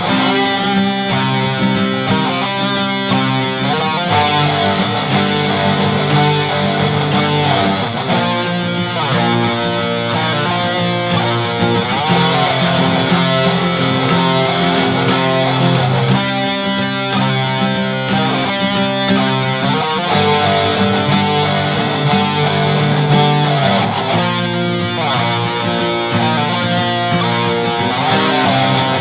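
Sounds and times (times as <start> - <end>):
electro-acoustic guitar: 0.0 - 29.0.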